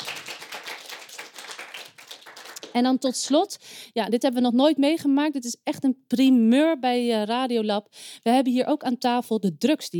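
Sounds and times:
audience applauding a guest at a live talk show: 0.0s - 2.7s
speech: 2.8s - 9.9s.

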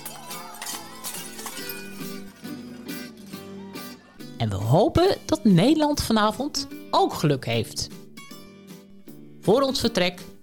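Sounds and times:
plates smashing on the floor: 0.0s - 2.6s
speech: 4.4s - 8.0s, 9.5s - 10.3s.

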